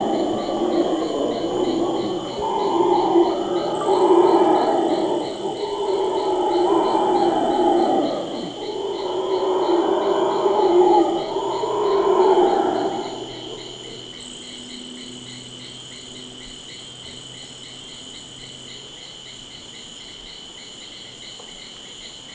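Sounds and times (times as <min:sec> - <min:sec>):
Guianan red howler Alouatta macconnelli: 0:00.0 - 0:14.5.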